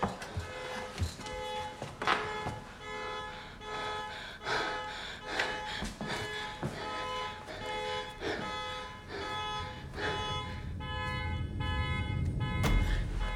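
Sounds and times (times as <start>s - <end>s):
car horn honking set off by key fob: 0.0s - 13.3s
low rumbling: 7.5s - 13.3s.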